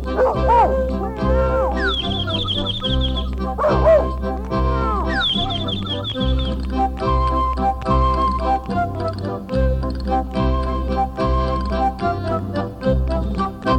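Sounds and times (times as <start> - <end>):
bouncy steady musical backing with bright tinkling notes: 0.0 - 13.7
short yappy dog barks: 0.1 - 2.4, 3.6 - 5.7.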